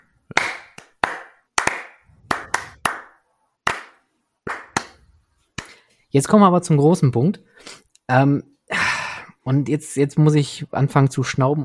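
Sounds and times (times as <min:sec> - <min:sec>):
single person clapping hands: 0:00.3 - 0:05.0, 0:05.6 - 0:05.8
speech: 0:06.1 - 0:08.5, 0:09.5 - 0:11.6.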